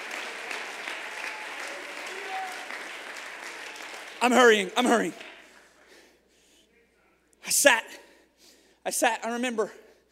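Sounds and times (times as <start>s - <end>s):
audience clapping hands in praise: 0.0s - 6.0s
speech: 4.2s - 5.3s, 8.9s - 9.9s.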